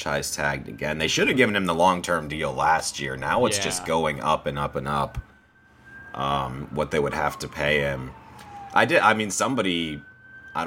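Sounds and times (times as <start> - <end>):
speech: 0.0 - 5.3, 6.2 - 10.6
voice imitating a wailing police siren as a sound effect: 1.0 - 1.7, 3.0 - 5.0, 6.1 - 10.6.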